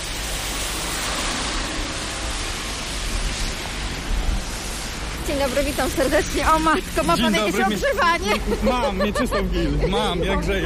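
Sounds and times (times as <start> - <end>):
steady rain pouring down outdoors: 0.0 - 10.6
speech: 5.3 - 10.6
laughter: 6.6 - 10.6.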